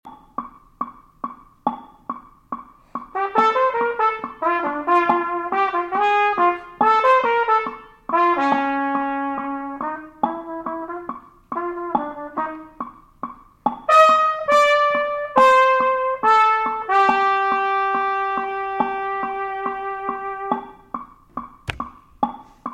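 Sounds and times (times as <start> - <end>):
latin jazz trumpet: 3.0 - 13.0, 13.9 - 20.9.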